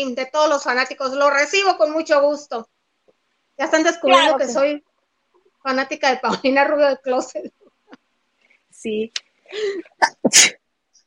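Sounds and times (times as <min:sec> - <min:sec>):
speech: 0:00.0 - 0:02.8, 0:03.6 - 0:04.9, 0:05.6 - 0:07.6, 0:08.8 - 0:10.6
person sneezing: 0:10.0 - 0:10.6.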